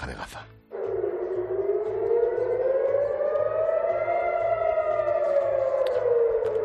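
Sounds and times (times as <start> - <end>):
air raid siren wailing in Jerusalem and Tel Aviv, Israel: 0.7 - 6.6
faint regular low pulsing: 0.7 - 6.6.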